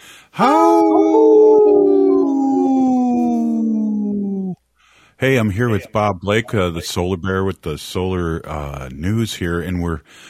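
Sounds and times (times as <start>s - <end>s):
speech: 0.4s - 1.2s, 5.2s - 10.2s
people howling like wolves in overlapping chorus: 0.4s - 4.6s.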